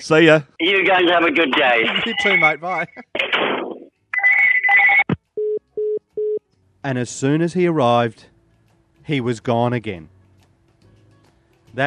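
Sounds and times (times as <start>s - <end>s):
speech: 0.0s - 3.6s, 6.8s - 8.3s, 9.1s - 10.1s
telephone ringing with a warbling electronic trill: 4.2s - 6.4s.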